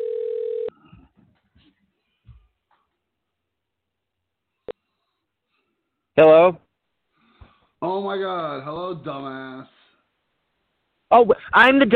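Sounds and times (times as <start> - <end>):
telephone dial tone: 0.0 - 0.7
speech: 6.2 - 6.6, 7.8 - 9.8, 11.1 - 11.9.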